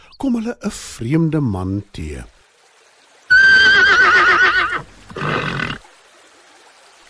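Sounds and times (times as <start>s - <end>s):
speech: 0.2s - 2.4s
horse whinnying: 3.3s - 5.9s
horse rough snort: 4.7s - 5.8s.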